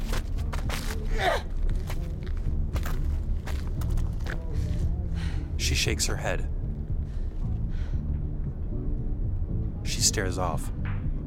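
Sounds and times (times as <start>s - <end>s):
person running footsteps: 0.0s - 5.0s
low rumble: 0.0s - 11.2s
speech: 5.7s - 6.6s, 10.1s - 10.8s.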